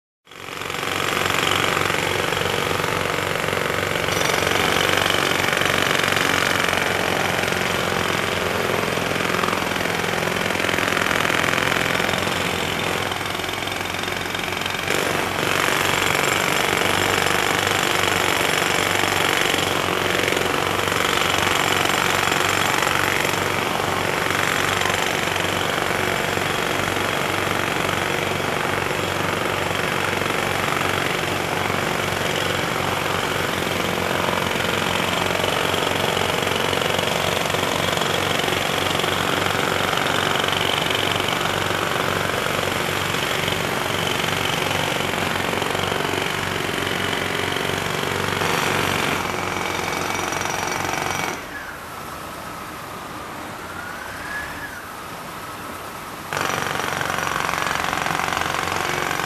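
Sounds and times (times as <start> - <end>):
jackhammer on a construction site: 0.3 - 51.8, 56.3 - 59.2.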